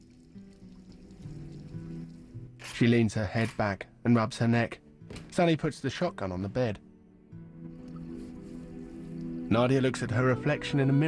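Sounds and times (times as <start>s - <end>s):
water running from a tap while hands are washed: 0.0s - 2.5s
speech: 2.8s - 4.8s, 5.4s - 6.8s, 9.5s - 11.0s.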